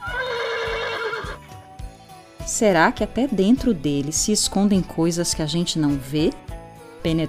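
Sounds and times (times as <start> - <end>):
loud horse whinny: 0.0 - 1.5
speech: 2.5 - 7.2.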